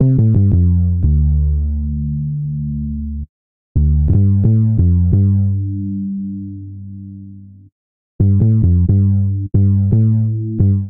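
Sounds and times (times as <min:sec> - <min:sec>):
bassline in C major: 0:00.0 - 0:10.8.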